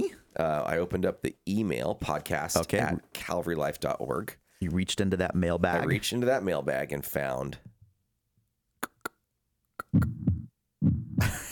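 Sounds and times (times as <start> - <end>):
speech: 0.4 - 7.7, 9.9 - 10.2
heartbeat sound effect: 9.8 - 11.5.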